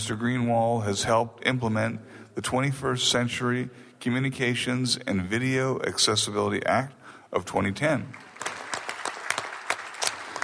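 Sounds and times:
speech: 0.0 - 8.3
small audience applauding to welcome a speaker: 8.2 - 10.4.

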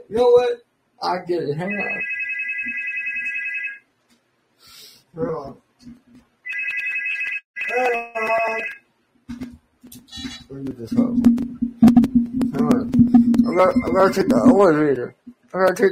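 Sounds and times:
speech: 0.1 - 2.8, 5.2 - 6.0, 7.7 - 8.8, 10.5 - 11.7, 12.5 - 15.9
phone ringtone: 1.6 - 3.8, 6.5 - 8.8, 13.5 - 14.3.

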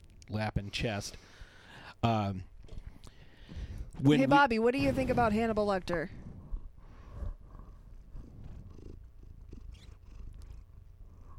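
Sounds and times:
speech: 0.3 - 1.4, 2.0 - 2.5, 4.0 - 6.2
female cat on a person's lap purring into a microphone: 6.1 - 11.3.

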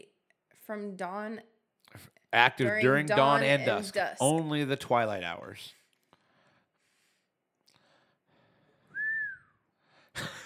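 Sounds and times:
speech: 0.7 - 5.8
person whistling one clear short note: 8.9 - 9.7.

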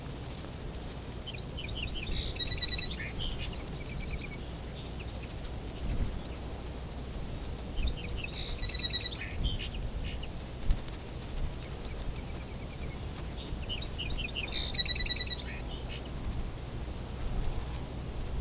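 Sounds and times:
low steady background noise: 0.0 - 18.3
two song sparrows counter-singing: 1.1 - 6.6, 7.6 - 10.5, 11.6 - 16.3.

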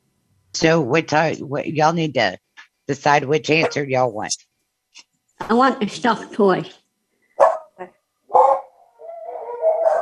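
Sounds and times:
speech: 0.6 - 6.8
dog barking: 3.6 - 3.8, 7.4 - 9.9.

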